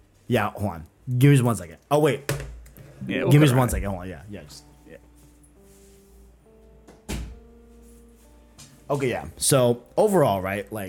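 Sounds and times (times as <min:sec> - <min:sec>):
speech: 0:00.3 - 0:02.4, 0:03.0 - 0:05.0, 0:08.9 - 0:10.8
door shutting with a thud: 0:07.0 - 0:07.4.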